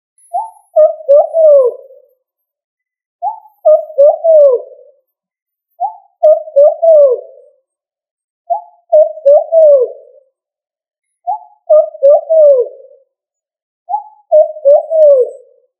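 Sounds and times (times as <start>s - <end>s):
pigeon cooing: 0.4s - 2.1s, 3.2s - 5.0s, 5.8s - 7.6s, 8.5s - 10.2s, 11.3s - 13.0s, 13.9s - 15.6s.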